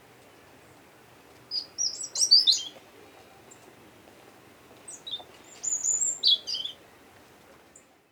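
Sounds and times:
faint background hiss: 0:00.0 - 0:08.1
European robin Erithacus rubecula singing: 0:01.5 - 0:02.7, 0:04.9 - 0:06.8.

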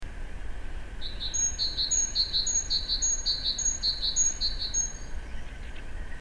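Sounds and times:
great tit Parus major singing a two-note phrase: 0:01.0 - 0:05.9.

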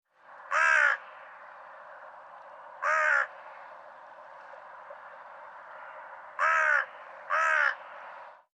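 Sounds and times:
steady background hiss: 0:00.1 - 0:08.5
Carrion crow Corvus corone cawing: 0:00.5 - 0:01.4, 0:02.8 - 0:03.8, 0:05.6 - 0:08.2.

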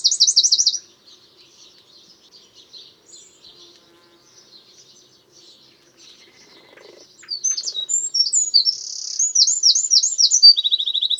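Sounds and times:
Eurasian wren Troglodytes troglodytes singing: 0:00.0 - 0:11.1.

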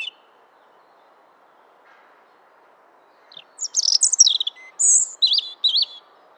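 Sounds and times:
European robin singing trills and thin whistles: 0:00.0 - 0:01.7, 0:03.0 - 0:06.3.

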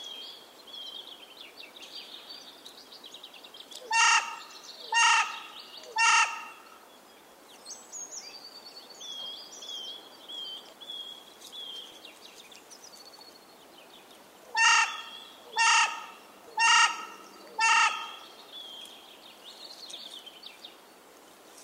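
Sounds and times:
carrion crow Corvus corone cawing: 0:03.9 - 0:04.4, 0:05.0 - 0:06.6, 0:14.6 - 0:18.2.

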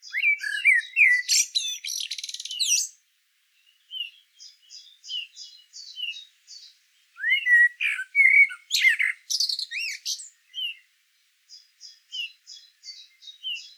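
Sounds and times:
common blackbird singing, Turdus merula: 0:00.0 - 0:03.0, 0:03.6 - 0:10.9, 0:11.5 - 0:13.7.

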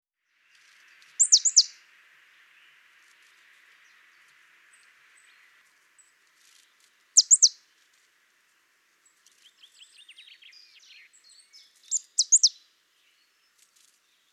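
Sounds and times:
soft background hiss: 0:00.2 - 0:14.3
marsh tit Poecile palustris calls: 0:01.2 - 0:01.7, 0:07.2 - 0:07.6, 0:11.8 - 0:12.6.

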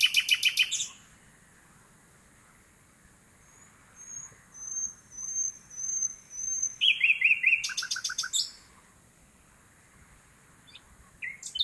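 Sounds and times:
Common nightingale Luscinia megarhynchos song: 0:00.0 - 0:11.6.

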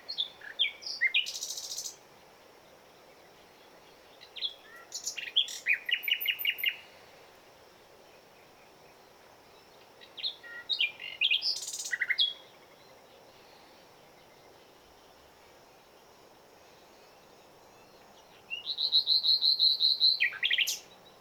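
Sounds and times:
Common nightingale Luscinia megarhynchos singing varied phrases: 0:00.0 - 0:02.0, 0:03.2 - 0:06.8, 0:09.6 - 0:12.8, 0:17.4 - 0:21.1.

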